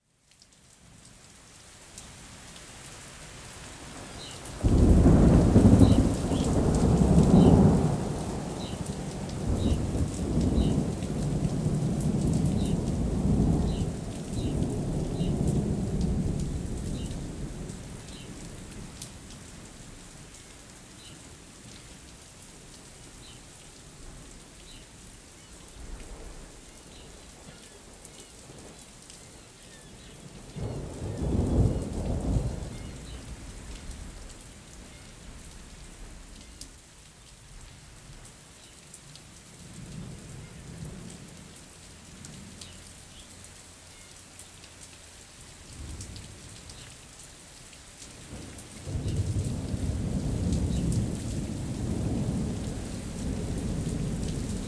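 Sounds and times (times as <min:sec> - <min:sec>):
distant thunder: 0:04.6 - 0:19.0, 0:29.8 - 0:36.4, 0:48.3 - 0:54.6.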